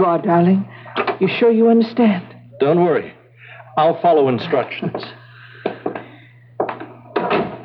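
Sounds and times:
speech: 0:00.0 - 0:03.2, 0:03.8 - 0:05.2
constant low hum: 0:00.0 - 0:07.6
door closing with dull thuds: 0:06.6 - 0:07.6.

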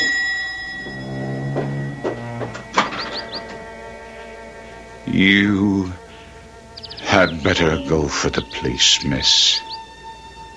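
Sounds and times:
bell ringing impatiently: 0:00.0 - 0:03.6
speech: 0:05.2 - 0:06.0, 0:07.4 - 0:09.7.

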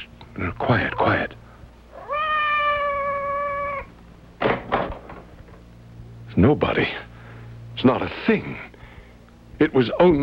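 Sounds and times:
speech: 0:00.4 - 0:01.4, 0:06.4 - 0:07.1, 0:07.8 - 0:08.7, 0:09.6 - 0:10.2
cat meowing outside a door: 0:01.9 - 0:03.9.

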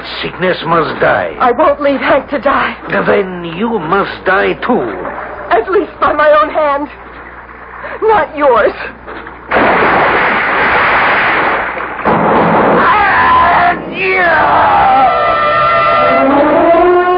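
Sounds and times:
speech: 0:00.2 - 0:07.0, 0:08.0 - 0:09.3, 0:14.0 - 0:15.2
old-fashioned heavy cannon firing: 0:09.2 - 0:13.9
shrill wavering tones: 0:12.9 - 0:17.1.

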